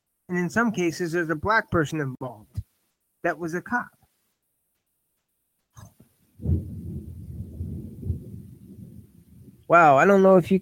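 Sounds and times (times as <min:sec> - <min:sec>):
speech: 0:00.3 - 0:02.6, 0:03.2 - 0:04.0, 0:09.7 - 0:10.5
sharp crack of thunder: 0:06.4 - 0:09.9.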